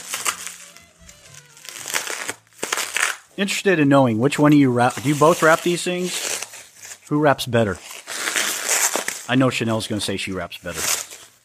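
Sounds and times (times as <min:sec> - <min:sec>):
plastic bubble wrap crinkling as it is handled: 0:00.0 - 0:03.7, 0:04.3 - 0:11.4
speech: 0:03.4 - 0:06.3, 0:07.1 - 0:07.9, 0:09.3 - 0:11.0.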